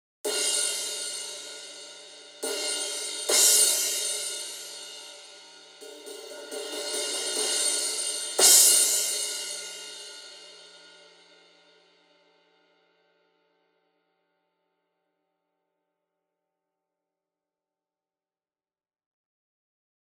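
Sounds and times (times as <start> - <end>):
16 crash cymbal in rock style: 0.3 - 12.2.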